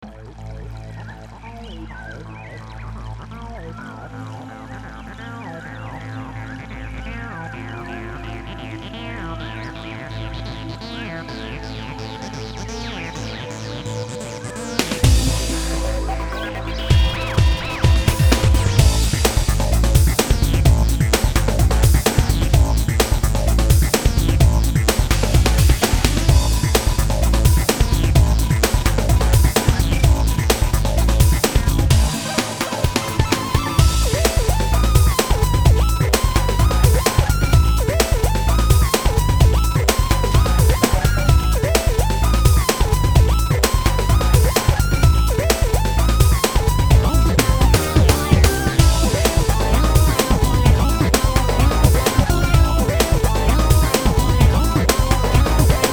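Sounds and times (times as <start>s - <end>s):
breakbeat drums: 14.8s - 55.9s.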